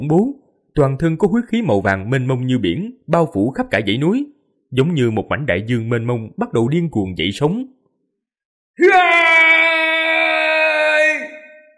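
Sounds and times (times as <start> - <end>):
speech: 0.0 - 7.8, 8.8 - 9.2
person screaming: 8.8 - 11.7.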